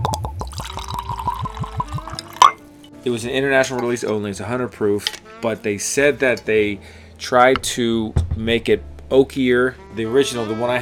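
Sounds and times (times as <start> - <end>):
whiskey glugging from a bottle into a glass: 0.0 - 2.7
single sharp glassy clink: 0.1 - 2.7
speech: 3.0 - 10.8.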